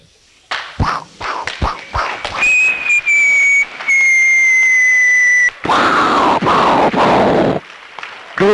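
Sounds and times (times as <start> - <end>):
harsh fizzing crackling firecracker burst: 0.3 - 8.5
firecrackers going off with sharp pops: 0.4 - 8.5
loud high firecracker whistle: 2.0 - 5.7.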